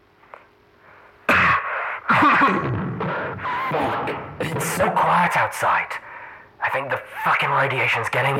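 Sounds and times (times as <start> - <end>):
man coughing hard and raspy: 1.3 - 5.0
speech: 2.4 - 2.8, 4.8 - 6.0, 6.6 - 8.3.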